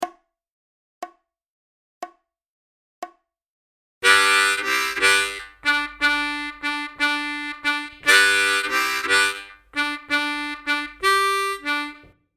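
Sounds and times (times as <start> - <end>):
solo rhythm harmonica: 4.0 - 12.1.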